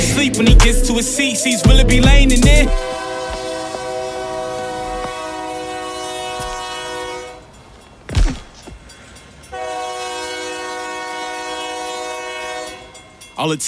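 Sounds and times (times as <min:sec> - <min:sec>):
speech: 0:00.2 - 0:03.0, 0:13.4 - 0:13.6
train horn blasts: 0:02.8 - 0:07.6, 0:09.5 - 0:13.2
train passing with sharp rushing clatter: 0:02.8 - 0:13.6.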